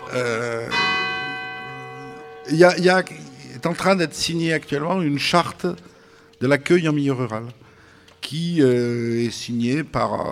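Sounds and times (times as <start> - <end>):
church bells ringing the hour: 0.0 - 7.4
speech: 0.1 - 0.8, 2.5 - 7.6, 8.2 - 10.3.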